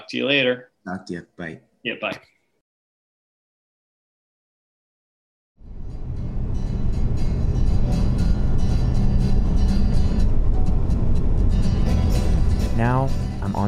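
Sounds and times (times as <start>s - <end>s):
speech: 0.1s - 2.4s, 12.8s - 13.6s
road roar of vehicle cruising at highway speed: 5.7s - 12.7s
trucks passing on highway: 5.8s - 13.4s.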